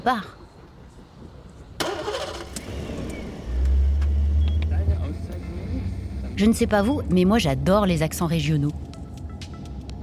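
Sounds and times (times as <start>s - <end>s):
speech: 0.0s - 0.4s, 6.4s - 8.8s
car engine cranking and starting: 1.8s - 6.4s.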